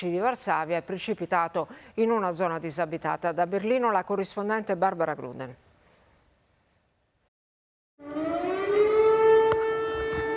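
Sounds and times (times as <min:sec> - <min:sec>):
speech: 0:00.0 - 0:05.7
air raid siren wailing at night in Tarnava Colonia, Lublin province, eastern Poland: 0:08.0 - 0:10.3.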